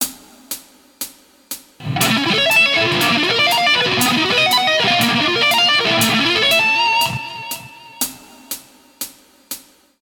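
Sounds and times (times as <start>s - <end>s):
guitar: 1.8s - 8.1s.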